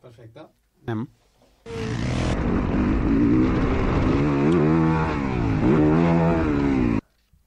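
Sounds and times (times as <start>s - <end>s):
speech: 0.1s - 1.2s
four-stroke 250cc motocross motorcycle engine running hard: 1.7s - 7.0s.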